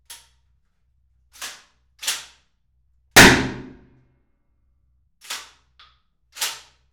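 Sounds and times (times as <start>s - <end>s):
shotgun fired in a small two-metre cubicle: 3.2s - 3.9s.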